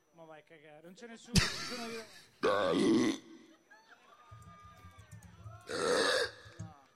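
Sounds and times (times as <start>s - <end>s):
speech: 0.4s - 3.3s
person burping on request in front of an audience: 1.8s - 3.4s, 5.7s - 6.6s.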